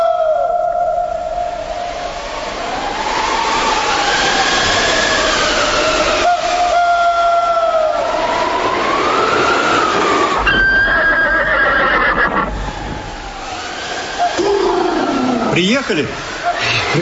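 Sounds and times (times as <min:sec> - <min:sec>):
steady rushing noise: 0:00.1 - 0:17.0
horses neighing in a field: 0:10.3 - 0:12.9
speech: 0:15.9 - 0:16.2.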